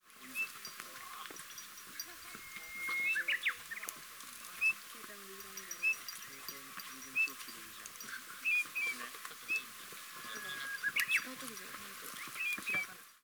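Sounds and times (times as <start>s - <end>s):
bird song: 0.2s - 13.2s.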